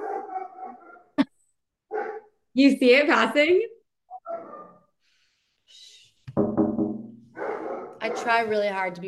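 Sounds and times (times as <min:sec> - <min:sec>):
dog barking: 0:00.0 - 0:01.2, 0:01.9 - 0:02.4, 0:07.3 - 0:08.6
speech: 0:02.6 - 0:03.7, 0:08.1 - 0:09.0.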